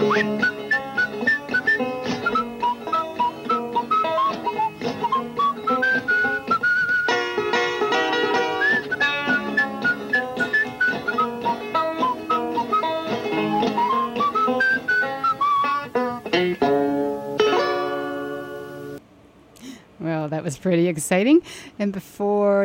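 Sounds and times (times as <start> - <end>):
person whistling a lilting tune: 0.0 - 7.4, 8.4 - 16.1
full instrumental backing music: 0.0 - 19.0
speech: 0.2 - 0.5, 20.6 - 22.6.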